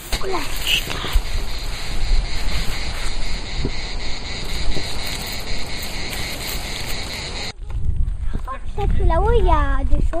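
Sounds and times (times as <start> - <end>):
cicadas and crickets chirring: 0.0 - 7.6
wind blowing through leaves: 0.0 - 10.1
speech: 0.2 - 1.3, 9.1 - 10.1.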